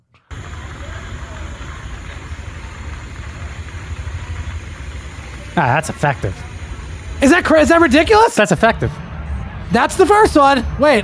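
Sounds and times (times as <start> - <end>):
noise machine static hiss: 0.3 - 8.4
speech: 5.6 - 6.5, 7.2 - 9.0, 9.7 - 11.0.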